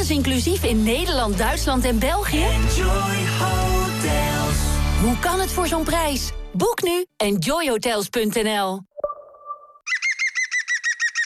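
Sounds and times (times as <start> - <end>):
speech: 0.0 - 8.9
green woodpecker laughing call: 9.9 - 11.2.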